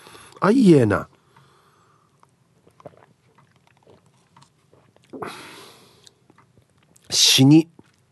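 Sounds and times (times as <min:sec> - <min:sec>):
speech: 0:00.4 - 0:01.1, 0:07.4 - 0:07.8
person biting and chewing guava: 0:02.1 - 0:07.1, 0:07.7 - 0:08.1.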